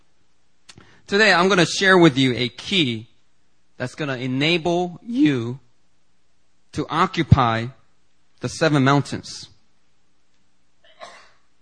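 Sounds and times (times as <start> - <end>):
speech: 1.1 - 3.1, 3.8 - 5.6, 6.7 - 7.8, 8.4 - 9.5
faint sneeze: 10.9 - 11.5.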